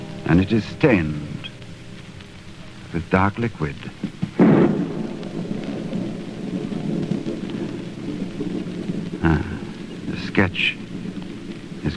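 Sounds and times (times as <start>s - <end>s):
distant thunder rolling in a long low rumble: 0.0s - 11.9s
rain-like hiss: 0.0s - 11.9s
speech: 0.3s - 1.3s, 2.9s - 4.1s, 10.4s - 10.9s.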